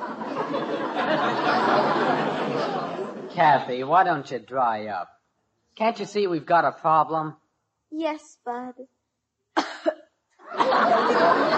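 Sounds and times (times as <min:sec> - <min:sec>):
laughter: 0:00.0 - 0:04.9, 0:10.4 - 0:11.5
speech: 0:03.4 - 0:05.2, 0:05.8 - 0:09.0, 0:09.8 - 0:11.5
girl fake coughing: 0:09.6 - 0:10.0.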